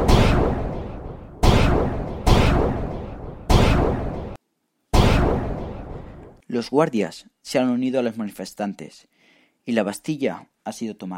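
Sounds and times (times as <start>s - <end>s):
heavy gunshots on a crowd: 0.0s - 6.3s
speech: 6.5s - 11.1s.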